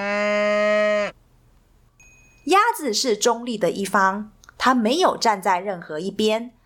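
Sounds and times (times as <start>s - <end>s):
single long low cow moo: 0.0s - 1.2s
speech: 2.8s - 6.6s.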